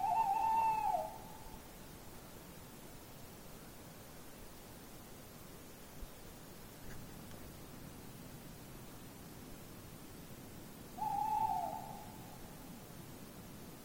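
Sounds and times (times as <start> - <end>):
Tawny owl hoot: 0.0 - 1.6, 11.0 - 12.6
steady low background hiss: 0.0 - 13.8.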